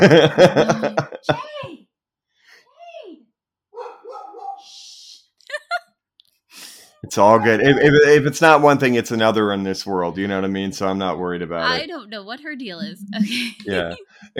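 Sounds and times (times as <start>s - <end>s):
laughter: 0.0s - 1.3s, 5.5s - 5.8s, 7.1s - 11.8s, 12.8s - 14.3s
speech: 0.0s - 1.5s, 7.1s - 14.3s
female dog barking: 3.8s - 4.7s, 7.3s - 7.9s.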